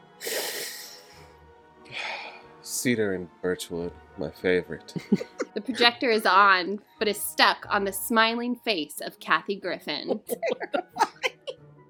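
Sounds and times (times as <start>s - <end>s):
brief sniff: 0.2s - 1.4s
deep breath in through the nose: 0.2s - 2.6s
speech: 2.8s - 11.1s
laughter: 4.9s - 5.8s, 10.0s - 11.5s.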